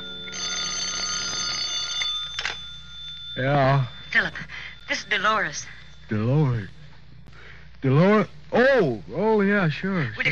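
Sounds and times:
telephone bell ringing with a harsh metallic jangle: 0.0 - 6.1
speech: 3.4 - 6.8, 7.8 - 10.3.

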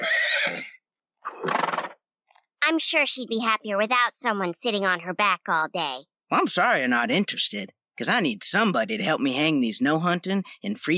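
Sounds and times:
pony neighing: 0.0 - 2.0
speech: 2.8 - 10.9.

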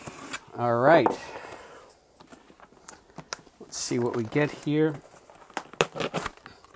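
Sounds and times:
speech: 0.6 - 1.4, 3.8 - 5.1
knife slicing open a package on Long Island: 5.6 - 6.4.

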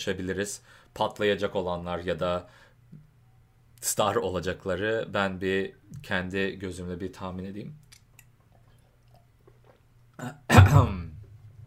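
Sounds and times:
speech: 0.0 - 3.0, 3.8 - 7.8, 10.2 - 11.1
harsh throat clearing: 10.2 - 11.1.

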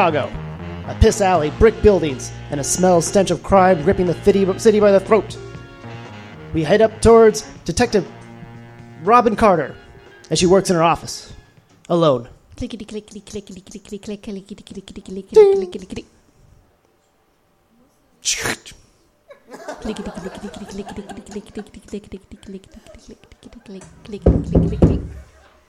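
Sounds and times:
speech: 0.0 - 5.5, 6.5 - 8.2, 9.0 - 16.2, 18.2 - 18.8, 19.5 - 25.2
laughter: 19.3 - 25.6
heavy thumping burst: 23.8 - 25.4
knocking on a door: 24.2 - 25.2.

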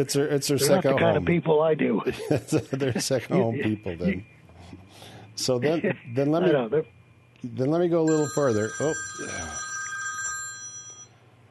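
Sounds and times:
speech: 0.0 - 9.6
laughter: 2.0 - 3.8
telephone ringing with bright electronic tone: 8.1 - 11.2.

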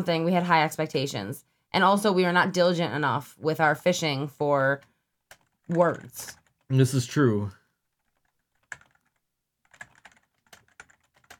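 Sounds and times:
speech: 0.0 - 4.9, 5.7 - 7.6
typing on a computer keyboard: 5.3 - 6.6, 7.9 - 11.3.

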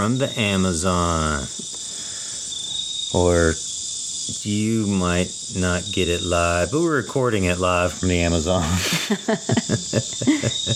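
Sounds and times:
speech: 0.0 - 1.7, 3.1 - 3.6, 4.4 - 10.7
crickets trilling in Amazon jungle: 0.0 - 10.7
laughter: 8.4 - 10.7.

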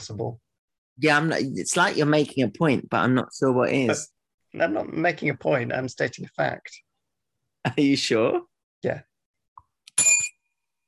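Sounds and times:
speech: 0.0 - 6.9, 7.6 - 9.1
bright metallic bell ding: 10.0 - 10.4.

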